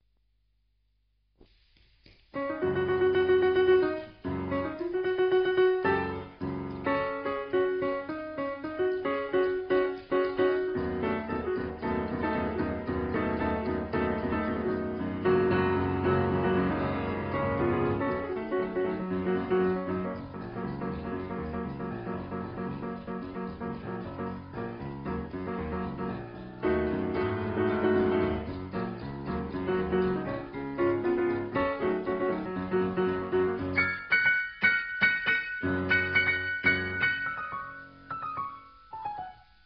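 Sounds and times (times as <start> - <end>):
boogie piano: 2.3 - 39.6.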